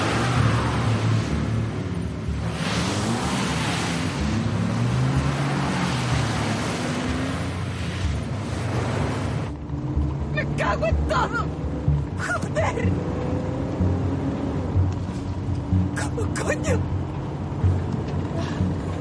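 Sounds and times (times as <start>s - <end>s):
car engine starting and revving: 0.0s - 19.0s
road noise: 0.0s - 19.0s.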